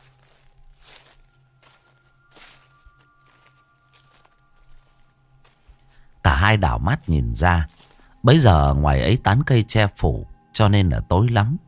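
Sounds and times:
footsteps crunching and rustling on dry leaves in a garden: 0.0s - 8.5s
speech: 6.5s - 11.6s.

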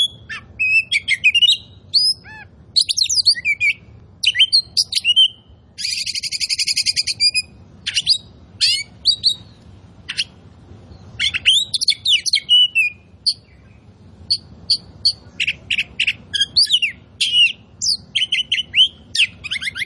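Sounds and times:
Oriental magpie-robin singing: 0.0s - 19.8s.

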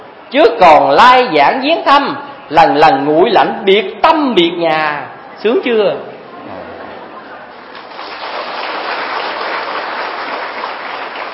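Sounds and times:
speech: 0.3s - 6.1s
audience applause during a sermon: 7.8s - 11.3s.

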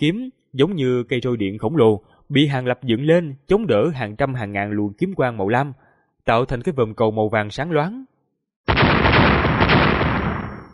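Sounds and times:
speech: 0.0s - 8.1s
explosion sound effect: 8.7s - 10.7s.

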